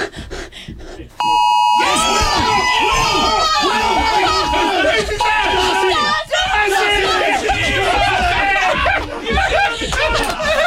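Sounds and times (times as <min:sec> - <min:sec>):
loud steady electronic phone notification alert tone: 0:01.2 - 0:02.1
voices murmuring: 0:01.3 - 0:10.6
laughter: 0:01.9 - 0:10.6.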